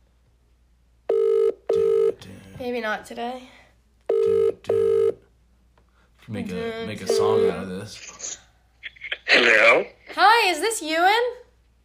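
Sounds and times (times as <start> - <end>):
phone ringback tone as a call is placed: 1.1 - 2.2, 4.1 - 5.2, 7.0 - 7.6
speech: 2.6 - 3.6, 6.3 - 8.4, 9.3 - 11.4.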